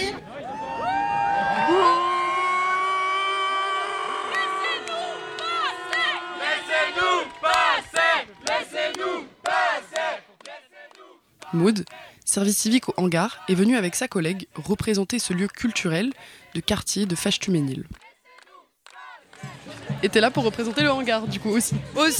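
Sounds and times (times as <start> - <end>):
crowd shouting criticism at police: 0.0 - 12.2, 18.0 - 22.1
crowd chanting angry protest shouting: 0.0 - 22.1
speech: 11.6 - 18.0, 20.0 - 22.1.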